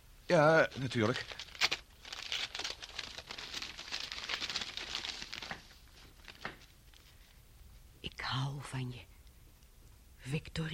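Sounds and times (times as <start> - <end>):
speech: 0.3 - 1.4, 8.4 - 9.1, 10.2 - 10.7
envelope being opened: 0.6 - 7.1
paper crinkling and tearing: 0.6 - 7.1.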